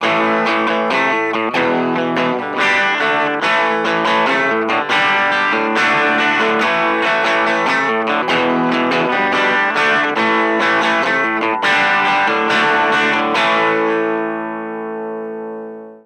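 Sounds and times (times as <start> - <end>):
low overdriven guitar: 0.0 - 16.0.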